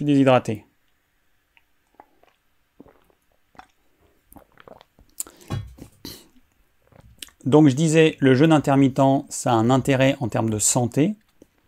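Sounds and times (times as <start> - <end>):
speech: 0.0 - 0.7, 7.4 - 11.2
mouth clicks: 1.5 - 7.4
person gulping water: 1.5 - 7.4.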